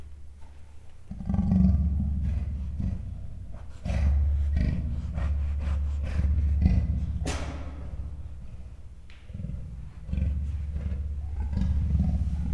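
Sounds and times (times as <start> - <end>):
captive male and female leopards growling at a zoo in Miskolc: 1.0 - 12.5.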